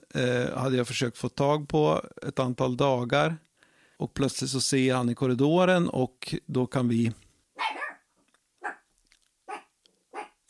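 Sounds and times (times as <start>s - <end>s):
speech: 0.1s - 7.2s
small dog barking: 7.6s - 8.9s, 9.5s - 10.4s.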